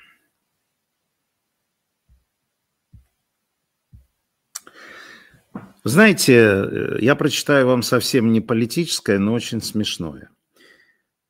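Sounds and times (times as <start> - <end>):
soft dull thumps of paper handling: 2.9 - 3.2, 3.9 - 4.2, 5.5 - 5.8
speech: 5.8 - 10.4.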